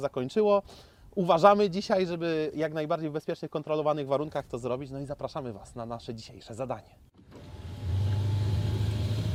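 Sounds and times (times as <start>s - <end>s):
speech: 0.0s - 7.6s
Skoda Octavia RS pulling away on road tyres for a warm-up lap: 7.2s - 9.3s.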